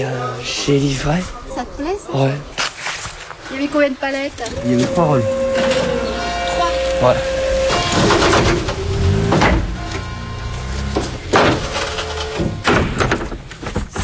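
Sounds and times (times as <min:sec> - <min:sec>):
speech: 0:00.0 - 0:02.6, 0:03.5 - 0:06.0, 0:06.6 - 0:07.3
steady loud rumble: 0:04.4 - 0:13.6
heavy door-closing thuds as a delivery driver leaves: 0:04.6 - 0:14.0.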